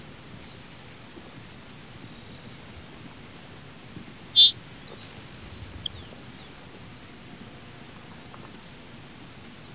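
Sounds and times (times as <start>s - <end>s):
faint background hiss: 0.0s - 9.7s
Grassland Sparrow Ammodramus humeralis call: 4.4s - 6.5s.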